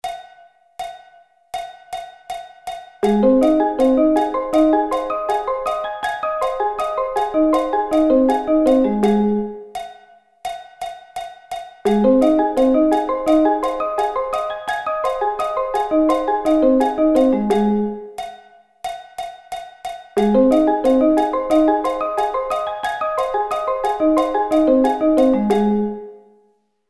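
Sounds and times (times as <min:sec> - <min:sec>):
Ab arpeggio inversions: 0:03.0 - 0:09.6, 0:11.9 - 0:18.1, 0:20.2 - 0:26.2.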